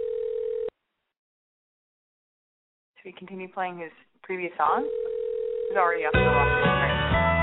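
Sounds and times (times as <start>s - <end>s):
electronic phone ringback tone: 0.0s - 0.7s, 4.8s - 6.2s
speech: 3.0s - 5.0s, 5.7s - 7.3s.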